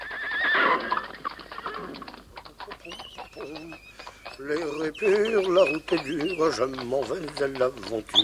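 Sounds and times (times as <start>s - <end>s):
horse hooves trotting: 0.0s - 8.2s
old yellow horse whinnying: 0.0s - 8.2s
faint chirps: 2.8s - 6.6s
speech: 4.4s - 8.2s.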